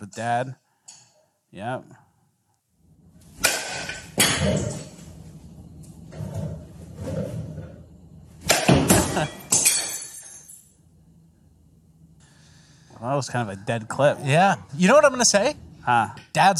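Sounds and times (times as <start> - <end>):
speech: 0.0 - 0.6, 1.5 - 2.0, 4.4 - 4.9, 9.2 - 9.4, 13.0 - 16.5
glass struck and shattering during batting practice: 8.6 - 10.7.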